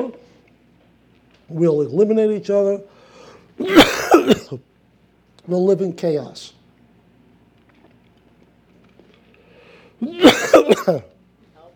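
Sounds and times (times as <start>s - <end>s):
speech: 1.5s - 3.0s, 3.6s - 4.7s, 5.5s - 6.6s, 10.0s - 11.1s
person coughing: 3.6s - 4.6s, 10.0s - 11.1s
throat clearing: 10.0s - 11.1s.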